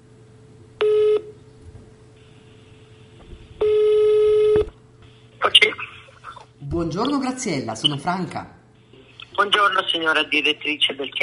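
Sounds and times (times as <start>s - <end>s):
telephone ring tones: 0.8s - 1.3s, 3.6s - 4.6s
speech: 6.8s - 8.6s, 9.4s - 11.2s.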